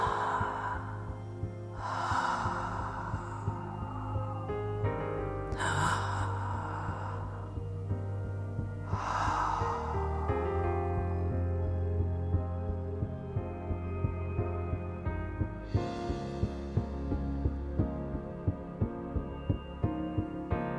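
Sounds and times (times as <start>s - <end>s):
slow breathwork breathing with long airy exhales: 0.0s - 11.8s
low steady hum: 0.0s - 20.7s.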